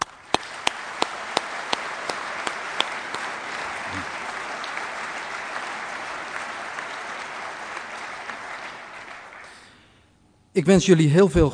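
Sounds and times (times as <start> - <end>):
audience applause: 0.0 - 9.8
sharp individual claps: 0.0 - 9.8
speech: 10.6 - 11.5.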